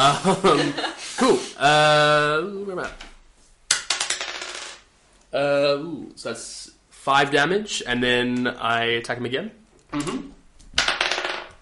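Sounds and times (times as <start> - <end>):
laughter: 0.0 - 1.5
speech: 0.0 - 3.1, 5.3 - 10.4
dice including a D4 clattering across a hard table: 3.7 - 4.9, 10.6 - 11.6.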